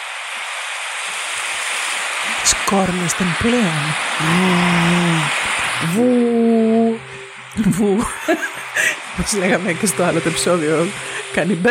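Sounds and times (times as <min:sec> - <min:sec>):
sea waves from a swelling sea: 0:00.0 - 0:11.7
speech: 0:02.4 - 0:07.0, 0:07.6 - 0:11.7.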